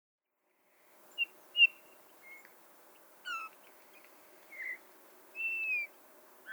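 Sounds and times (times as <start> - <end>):
Eurasian bullfinch Pyrrhula pyrrhula piping whistles: 1.2 - 2.5, 3.2 - 4.8, 5.4 - 6.5.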